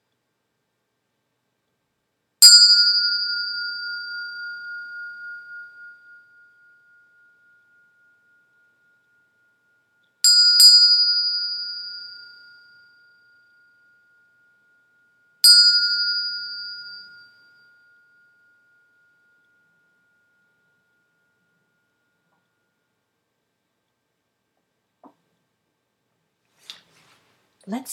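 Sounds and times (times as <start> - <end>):
meditation bell strikes: 2.4 - 22.4
speech: 27.7 - 27.9.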